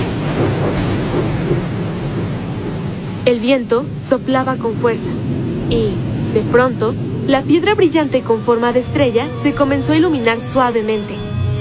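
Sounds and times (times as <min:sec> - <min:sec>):
deep continuous rumble of thunder: 0:00.0 - 0:11.5
heavy rain: 0:00.0 - 0:11.5
speech: 0:03.2 - 0:11.2.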